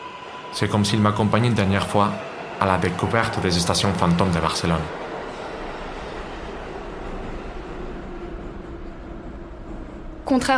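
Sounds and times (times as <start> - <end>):
speech: 0.6 - 5.0, 10.3 - 10.5
old metro car rolling through a dark tunnel: 3.8 - 10.5.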